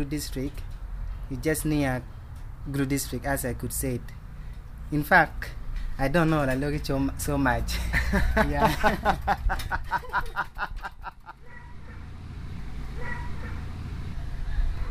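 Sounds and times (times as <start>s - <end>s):
speech: 0.0s - 0.7s, 1.3s - 4.2s, 4.9s - 11.2s
lorry engine idling: 0.0s - 14.8s
laughter: 7.7s - 11.4s
dog barking: 11.4s - 12.1s, 13.0s - 13.7s.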